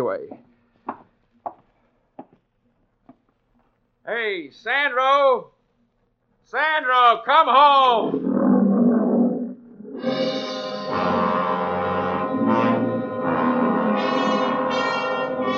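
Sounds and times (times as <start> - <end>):
speech: 0.0 - 0.6, 4.1 - 5.6, 6.5 - 8.2
old lion roaring: 7.7 - 15.4.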